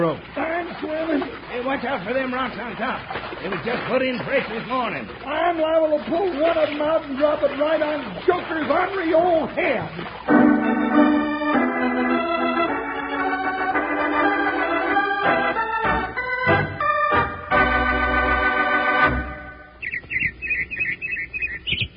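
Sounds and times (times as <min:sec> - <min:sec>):
speech: 0:00.0 - 0:10.5
music: 0:10.3 - 0:19.8
robin singing in spring: 0:19.6 - 0:21.9.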